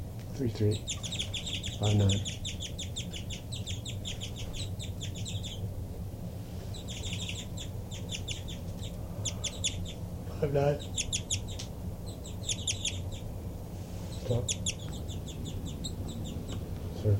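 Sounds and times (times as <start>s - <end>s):
steady low hum: 0.0s - 17.1s
speech: 0.4s - 1.2s, 1.8s - 2.4s, 10.4s - 10.9s, 14.3s - 14.6s
bird giving rapid high-pitched flight calls in response to another bird: 0.5s - 5.8s, 6.5s - 16.7s.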